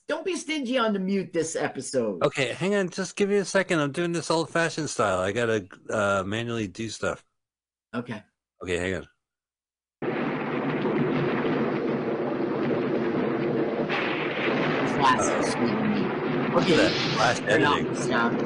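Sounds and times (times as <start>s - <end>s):
speech: 0.2s - 7.3s, 7.9s - 9.1s, 16.5s - 18.4s
deep rolling thunder in a thunderstorm: 10.0s - 18.4s
heavy rain in a thunderstorm: 10.0s - 18.4s.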